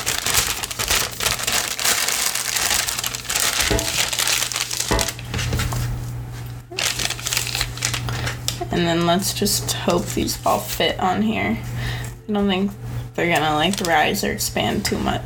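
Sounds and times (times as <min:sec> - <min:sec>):
parchment paper crinkling as it is laid down: 0:00.0 - 0:06.0, 0:06.8 - 0:10.8, 0:13.3 - 0:14.1
speech: 0:08.8 - 0:11.7, 0:12.3 - 0:15.2.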